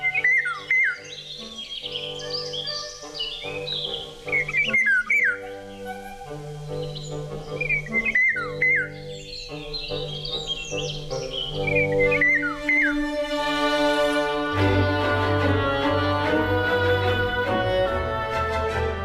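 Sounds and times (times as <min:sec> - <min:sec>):
Eurasian golden oriole song of fluting slurred whistled phrases: 0:00.0 - 0:18.9.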